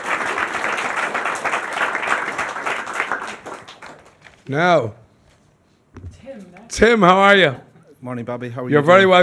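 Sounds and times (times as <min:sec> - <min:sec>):
applause from a small group: 0:00.0 - 0:04.4
speech: 0:04.5 - 0:05.0, 0:06.4 - 0:09.2.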